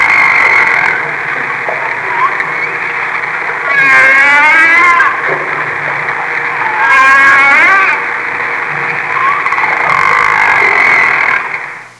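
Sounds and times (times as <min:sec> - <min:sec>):
baleen whale sounds: 0:00.0 - 0:11.9.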